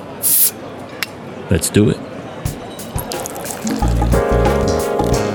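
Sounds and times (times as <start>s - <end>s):
bottle opening with carbonation hissing: 0.2s - 0.5s, 2.9s - 5.2s
speech: 1.5s - 2.1s.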